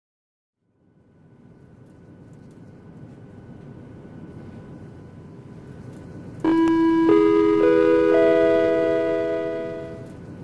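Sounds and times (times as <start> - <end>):
airplane cabin chime on a Turkish Airlines flight: 6.5 - 10.2.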